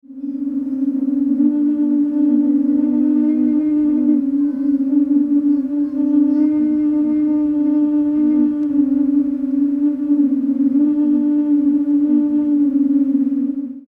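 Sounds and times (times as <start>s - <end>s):
low bamboo organ: 0.0s - 13.8s.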